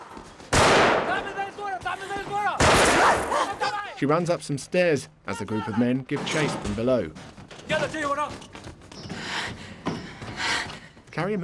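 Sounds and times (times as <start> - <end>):
gunshots fired from a courtyard: 0.5 - 1.6, 2.6 - 3.6
speech: 4.0 - 8.6, 11.2 - 11.4.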